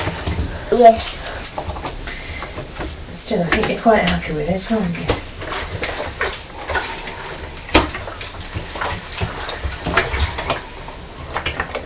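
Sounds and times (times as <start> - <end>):
sharper raindrops tapping: 0.0 - 11.8
speech: 0.7 - 1.7, 3.3 - 5.2.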